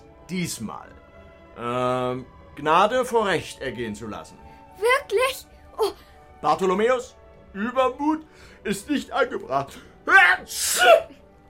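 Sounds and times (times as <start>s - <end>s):
speech: 0.3s - 1.0s, 1.6s - 11.2s
loud sneeze: 10.5s - 11.2s.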